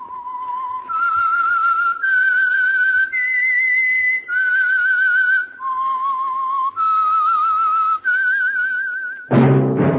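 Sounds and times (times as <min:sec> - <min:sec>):
whistled theme tune of a mystery radio drama: 0:00.0 - 0:09.8
sudden loud burst of sound: 0:09.3 - 0:09.9.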